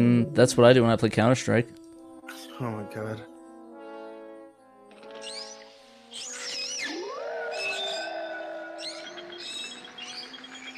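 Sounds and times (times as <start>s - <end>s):
speech: 0.0s - 3.3s
steady harmonic drone: 5.3s - 10.7s
synthetic decoy whale call with dolphin-like sliding squeaky whistles and tonal moans: 6.2s - 10.4s.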